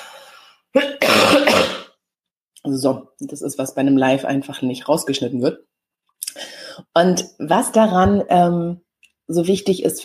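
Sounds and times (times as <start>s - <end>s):
speech: 0.7s - 1.8s, 2.6s - 5.7s, 6.9s - 10.0s
person with a summer flu coughing harshly: 0.8s - 2.0s.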